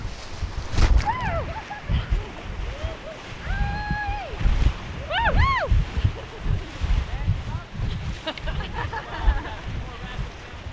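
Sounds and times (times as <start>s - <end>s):
people whooping and calling out excitedly: 1.0s - 4.4s, 5.0s - 6.0s
steady roar of rushing whitewater on a class 2 plus river rapid: 1.0s - 10.7s
laughter: 1.3s - 3.3s, 5.9s - 7.0s, 7.9s - 10.2s.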